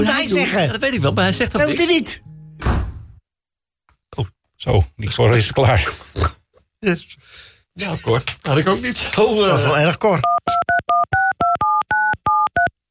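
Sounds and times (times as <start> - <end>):
speech: 0.0 - 2.3, 4.1 - 10.7
telephone keypad dialing tones: 10.2 - 12.7.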